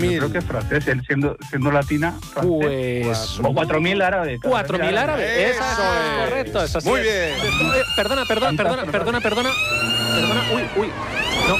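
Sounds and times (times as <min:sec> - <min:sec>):
speech: 0:00.0 - 0:11.5
school alarm siren wailing with high wavering tone: 0:05.5 - 0:11.5.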